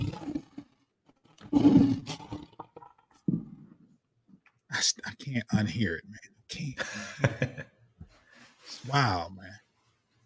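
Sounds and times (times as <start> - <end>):
lion roar sound effect: 0.0 - 0.8, 1.4 - 2.9
speech: 4.8 - 7.7, 8.8 - 9.4.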